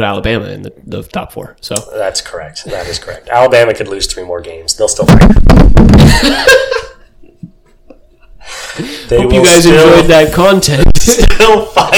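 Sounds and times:
speech: 0.0 - 6.8, 8.8 - 11.9
microphone handling noise: 5.1 - 6.2
person laughing: 5.2 - 7.6, 10.8 - 11.9.

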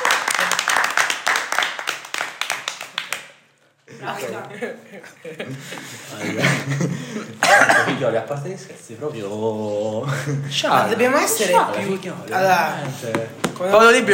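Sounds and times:
applause of several hands clapping: 0.0 - 3.6
people chuckling: 3.9 - 7.4
speech: 4.0 - 14.1.

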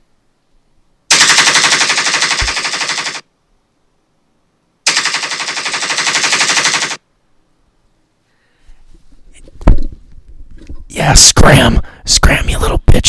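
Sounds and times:
rapid automatic gunfire: 1.1 - 3.3, 4.9 - 7.0
speech: 11.0 - 13.0.

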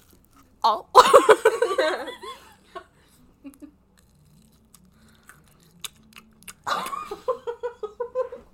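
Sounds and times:
speech: 0.6 - 2.1
bursts of laughter: 1.0 - 2.8, 6.7 - 8.5
crunchy chewing right up against the microphone: 3.5 - 7.0.

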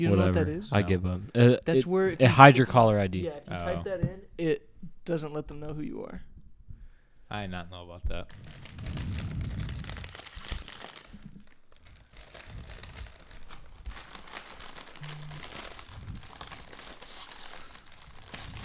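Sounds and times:
speech: 0.0 - 6.3, 7.3 - 9.2
plastic bag of chips being opened and crinkled: 8.3 - 18.6.

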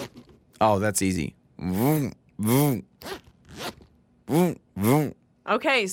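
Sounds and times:
purse zipper being pulled back and forth: 0.0 - 0.4, 3.0 - 5.1
speech: 0.6 - 3.2, 4.3 - 5.9.

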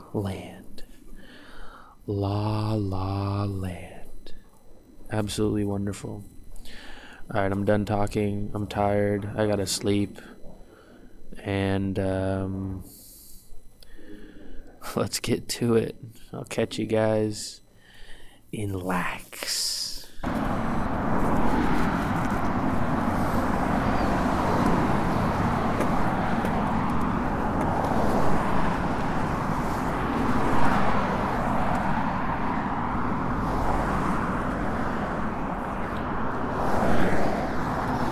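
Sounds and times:
speech: 0.1 - 0.6, 2.1 - 3.9, 5.1 - 10.4, 11.4 - 13.0, 14.8 - 17.6, 18.5 - 20.4
road traffic roar: 20.2 - 38.1
stream of cars passing by: 20.2 - 38.1.

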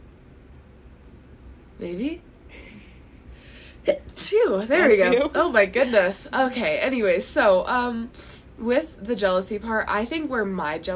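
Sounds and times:
speech: 1.8 - 2.7, 3.9 - 10.9
voiced intake of breath: 3.3 - 3.8.

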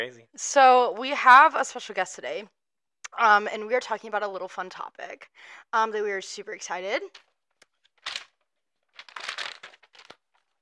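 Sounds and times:
speech: 0.0 - 2.6, 3.2 - 7.3
paper crinkling for ASMR: 7.6 - 10.6.

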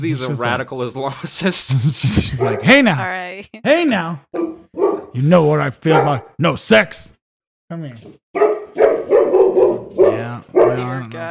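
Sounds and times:
speech: 0.0 - 4.6, 5.2 - 8.5, 10.4 - 11.2
dog barking: 2.4 - 2.8, 4.3 - 5.2, 5.8 - 6.4, 8.4 - 11.0
dog whining yelps: 8.4 - 10.1.

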